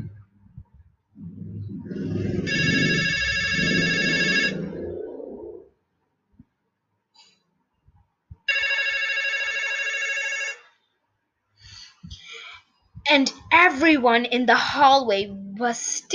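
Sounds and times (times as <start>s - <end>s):
low rumbling noise: 0.0s - 5.9s
public telephone bell ringing loudly in a hallway: 2.5s - 4.6s, 8.5s - 10.7s
speech: 13.2s - 16.1s.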